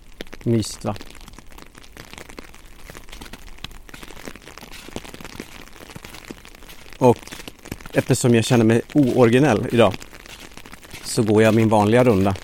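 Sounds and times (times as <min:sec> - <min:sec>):
rain falling in a winter forest: 0:00.0 - 0:12.4
speech: 0:00.4 - 0:01.1, 0:07.0 - 0:07.3, 0:08.0 - 0:10.1, 0:11.2 - 0:12.4.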